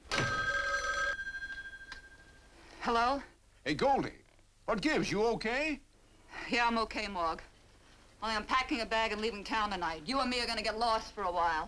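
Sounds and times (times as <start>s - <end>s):
telephone bell ringing: 0.1s - 2.5s
speech: 2.8s - 7.5s, 8.2s - 11.6s.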